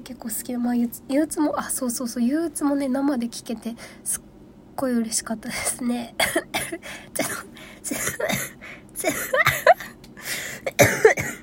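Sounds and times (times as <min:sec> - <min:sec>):
speech: 0:00.0 - 0:11.0
person coughing: 0:06.2 - 0:11.4.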